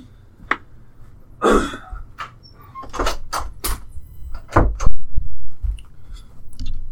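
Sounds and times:
bathroom door to the laundry room being shut: 2.2 - 5.2.

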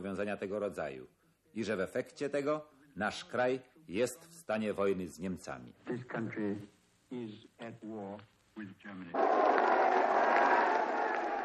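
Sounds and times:
speech: 0.0 - 10.6
crowd cheering and shouting: 9.2 - 11.4.

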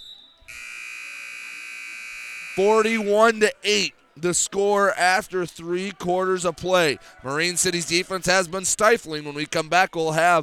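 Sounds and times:
faint crowd noise: 0.0 - 10.4
basketball end-of-quarter electronic buzzer: 0.5 - 3.1
speech: 2.6 - 10.4.

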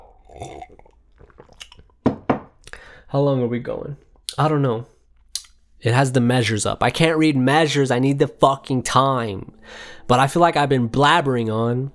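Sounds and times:
slurping mouth noises sipping coffee from a cup: 0.0 - 2.0
swallowing clicks: 0.0 - 2.0, 2.6 - 2.9, 5.2 - 5.6
speech: 3.1 - 4.9, 5.8 - 11.9.

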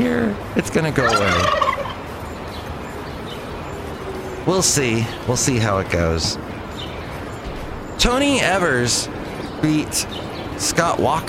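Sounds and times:
speech: 0.3 - 1.7, 4.5 - 6.5, 8.0 - 11.2
turkey gobbling sound effect: 1.0 - 2.0.

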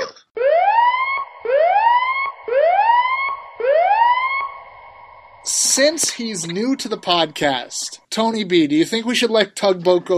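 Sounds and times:
loud siren alarm sweeping upward in pitch: 0.4 - 7.8
speech: 5.8 - 10.1.

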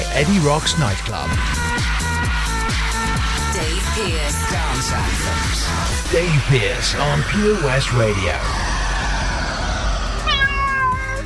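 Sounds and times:
low steady rumbling background: 0.0 - 11.2
speech: 0.2 - 1.9, 3.6 - 8.7
cat meowing loudly: 10.2 - 11.2.

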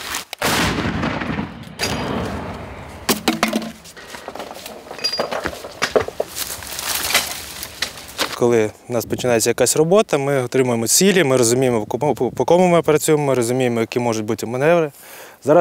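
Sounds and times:
American infantry support artillery gun firing: 0.4 - 8.2
metallic clanks and clinks: 1.6 - 8.4
speech: 8.4 - 15.6.

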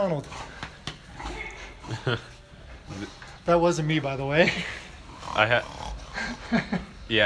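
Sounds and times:
speech: 0.0 - 0.5, 1.9 - 2.3, 2.9 - 7.2
dogs snorting: 0.0 - 7.1.

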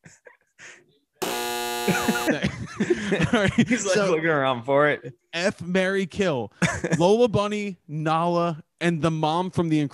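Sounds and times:
loud harsh electronic buzzer: 1.2 - 2.4
laughter: 1.8 - 4.2, 6.6 - 7.2
speech: 1.9 - 9.9.

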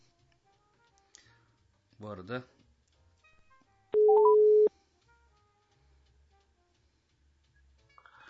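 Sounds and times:
speech: 2.0 - 2.6
short rising beeps: 4.0 - 4.7
steady electronic telephone line tone of dropped call: 4.0 - 4.7.

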